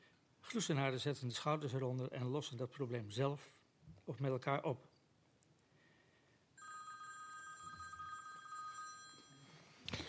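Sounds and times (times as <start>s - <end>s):
speech: 0.5s - 4.9s
telephone ringing with a trilling electronic tone: 6.6s - 10.0s.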